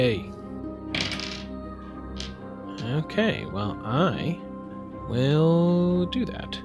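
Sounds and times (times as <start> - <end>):
speech: 0.0 - 0.4, 2.8 - 4.5, 5.1 - 6.6
dice clattering across a hard surface: 0.9 - 1.5, 2.1 - 2.4.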